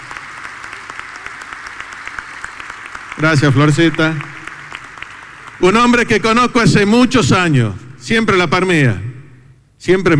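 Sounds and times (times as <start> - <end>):
crowd applause at a political event: 0.0 - 6.3
speech: 3.2 - 4.3, 5.6 - 9.0, 9.8 - 10.1.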